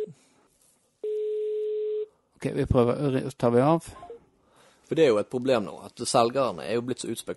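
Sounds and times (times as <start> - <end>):
phone line ringback tone of an outgoing call: 1.0 - 2.1
speech: 2.4 - 4.1, 4.9 - 7.3.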